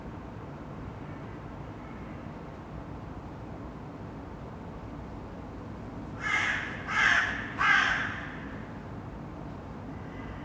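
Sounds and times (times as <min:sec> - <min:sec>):
crow calling rasping caws in Saint-Gilles, Belgium: 0:06.2 - 0:08.7.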